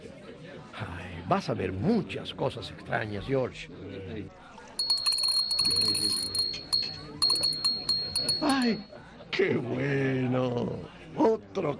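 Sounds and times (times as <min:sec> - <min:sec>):
speech: 0:01.3 - 0:04.4, 0:08.4 - 0:11.7
small bell ringing: 0:04.6 - 0:09.0.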